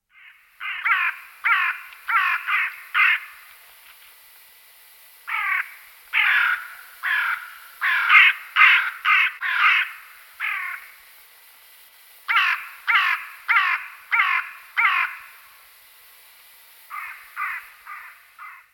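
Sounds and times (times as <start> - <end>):
crow calling: 0.1 - 3.4, 5.3 - 10.9, 12.3 - 15.4, 16.9 - 18.7.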